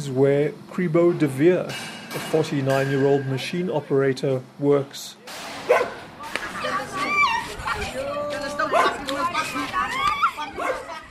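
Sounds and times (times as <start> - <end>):
speech: 0.0 - 5.8
several stray dogs barking and yipping on an outdoor street: 5.6 - 11.1.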